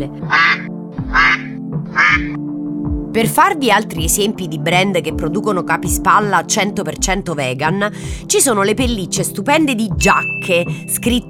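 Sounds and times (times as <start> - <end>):
speech: 0.0 - 0.4, 3.2 - 11.2
goose honking: 0.3 - 2.4.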